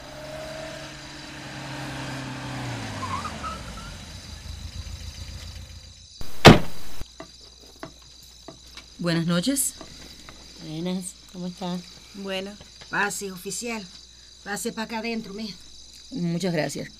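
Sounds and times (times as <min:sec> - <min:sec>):
officer's car engine rumbling, pulling up and idling: 0:00.0 - 0:07.0
crickets chirping faintly at night: 0:00.0 - 0:16.9
loud brief clunk: 0:06.2 - 0:07.0
speech: 0:09.0 - 0:09.9, 0:10.7 - 0:16.9.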